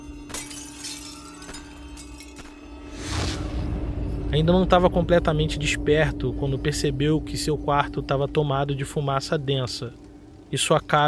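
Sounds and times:
scattered clinks and tinkling glass shards: 0.0 - 2.9
window pane shattering in a house at night: 0.0 - 2.9
heavier crashing burst with a low rumble: 2.9 - 6.9
speech: 4.3 - 11.0.

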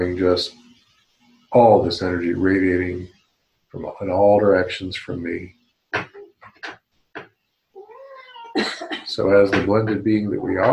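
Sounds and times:
speech: 0.0 - 0.6, 1.5 - 6.1, 9.2 - 10.7
cat meowing: 7.8 - 8.6.

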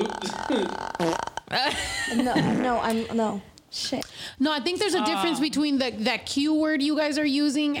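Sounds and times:
sputtering fart noise made with the mouth: 0.0 - 1.5, 2.4 - 2.8
wavering vocal sound: 0.0 - 1.6
speech: 0.5 - 7.7.

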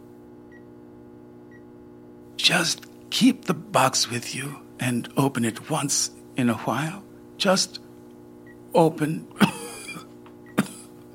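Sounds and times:
speech: 2.4 - 7.8, 8.7 - 9.4
woman coughing: 9.4 - 11.0.

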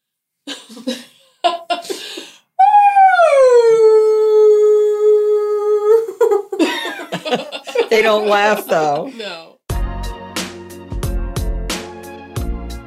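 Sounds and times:
laughter: 0.5 - 2.2, 6.2 - 9.4
speech: 0.8 - 1.1, 7.9 - 9.5
person imitating a wolf howl: 2.6 - 6.1.

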